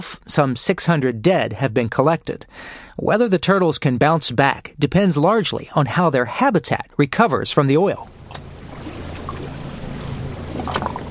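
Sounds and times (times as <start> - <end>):
speech: 0.0 - 8.4
boat engine droning: 8.0 - 11.0
rushing water: 8.0 - 11.0.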